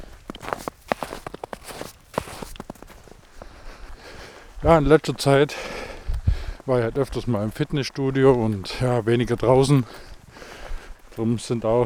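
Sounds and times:
footsteps crunching through snow in forest: 0:00.0 - 0:04.6
speech: 0:04.6 - 0:05.8, 0:06.6 - 0:10.1, 0:11.2 - 0:11.8.

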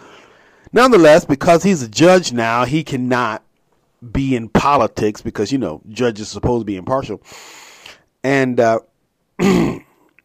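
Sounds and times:
speech: 0:00.7 - 0:03.4, 0:04.0 - 0:07.6, 0:08.2 - 0:09.8
gruff throat clearing: 0:09.4 - 0:10.2.

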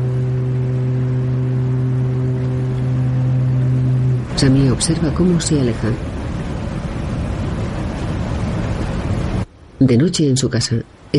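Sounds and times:
ferry engine drone while departing from the port: 0:00.0 - 0:11.1
speech: 0:04.4 - 0:06.1, 0:09.8 - 0:11.1.

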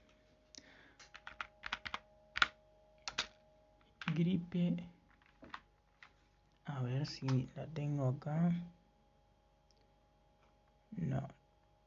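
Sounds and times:
faint steady hum: 0:00.0 - 0:11.8
typing on a computer keyboard: 0:01.0 - 0:03.4
speech: 0:04.2 - 0:05.0, 0:06.7 - 0:08.8, 0:11.0 - 0:11.4.

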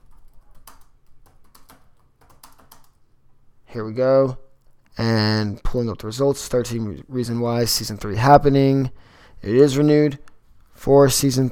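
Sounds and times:
computer keyboard typing: 0:00.0 - 0:03.0
speech: 0:03.8 - 0:04.4, 0:05.0 - 0:11.5.

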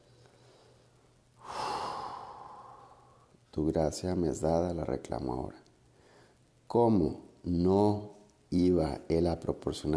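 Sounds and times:
deep slow inhale: 0:00.0 - 0:03.4, 0:05.9 - 0:06.5
speech: 0:03.6 - 0:05.6, 0:06.7 - 0:09.9.

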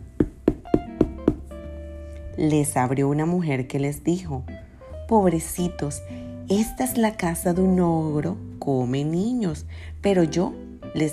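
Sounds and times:
firm knocks on a door: 0:00.2 - 0:01.5
speech: 0:02.4 - 0:04.5, 0:05.1 - 0:11.1.

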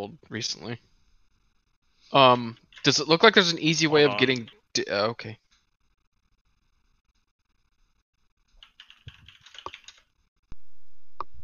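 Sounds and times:
speech: 0:00.0 - 0:00.9, 0:02.1 - 0:05.4
typing on a computer keyboard: 0:02.6 - 0:02.9, 0:08.6 - 0:10.1.

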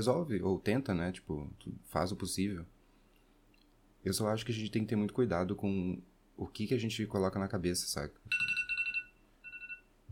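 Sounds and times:
speech: 0:00.0 - 0:02.8, 0:04.0 - 0:08.5
bright electronic alarm beeping: 0:08.3 - 0:10.0.

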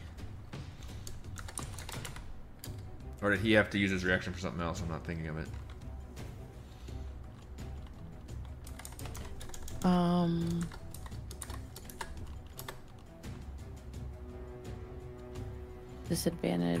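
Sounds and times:
typing on a computer keyboard during an online tabletop role-playing game: 0:01.0 - 0:02.8, 0:07.6 - 0:13.1
speech: 0:03.2 - 0:05.6, 0:09.8 - 0:10.8, 0:16.1 - 0:16.7.

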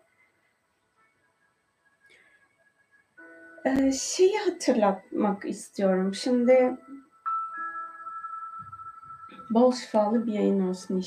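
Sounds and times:
speech: 0:03.6 - 0:07.0, 0:09.5 - 0:11.0
sustained bright electronic tone: 0:06.8 - 0:10.5.

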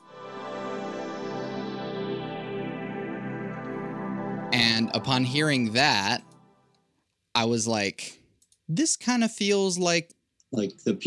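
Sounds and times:
sustained synthesizer chord: 0:00.0 - 0:06.7
speech: 0:04.8 - 0:06.3, 0:07.4 - 0:11.0.

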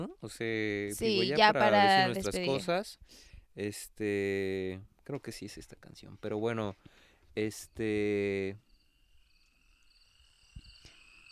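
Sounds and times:
speech: 0:00.0 - 0:08.7
crickets chirping outdoors: 0:07.7 - 0:11.2.

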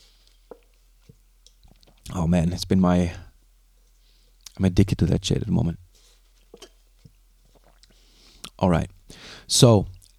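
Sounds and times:
speech: 0:02.2 - 0:03.3, 0:04.6 - 0:05.8, 0:08.6 - 0:10.1
sipping coffee from a cup: 0:06.4 - 0:08.6
swallowing: 0:07.4 - 0:08.6.

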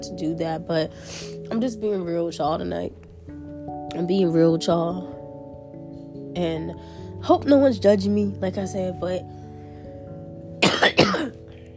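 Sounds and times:
speech: 0:00.0 - 0:03.0, 0:03.9 - 0:05.2, 0:06.4 - 0:09.4, 0:10.8 - 0:11.3
person coughing: 0:10.6 - 0:11.4.

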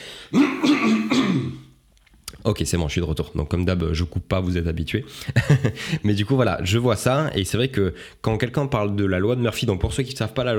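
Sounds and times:
throat clearing and coughing: 0:00.3 - 0:01.7
speech: 0:02.4 - 0:10.5
laughter: 0:05.4 - 0:05.9.

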